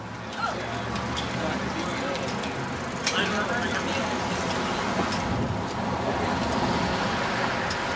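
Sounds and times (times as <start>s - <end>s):
engine and tire rumble of a car on the street: 0.0s - 7.9s
people's voices: 0.2s - 5.1s.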